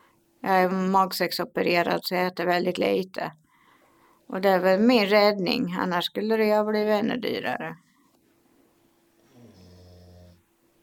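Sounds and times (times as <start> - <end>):
faint steady hum: 0.0 - 10.8
speech: 0.5 - 3.4, 4.3 - 7.8
dog snoring: 9.2 - 10.5.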